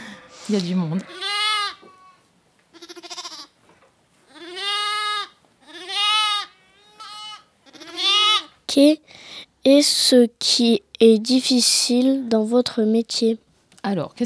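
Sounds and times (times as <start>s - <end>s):
sheep bleating: 0.0s - 3.6s, 4.3s - 8.6s
speech: 0.5s - 1.2s, 8.8s - 14.2s.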